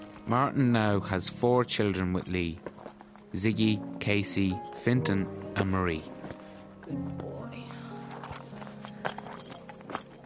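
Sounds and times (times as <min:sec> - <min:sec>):
speech: 0:00.3 - 0:06.2
horse hooves clip-clopping at a walking pace: 0:02.1 - 0:03.4, 0:08.2 - 0:10.2.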